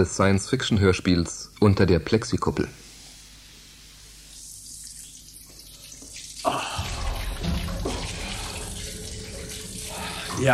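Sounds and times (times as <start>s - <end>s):
speech: 0.0s - 2.8s
shower running: 2.9s - 10.5s
knock or splash: 6.8s - 8.5s.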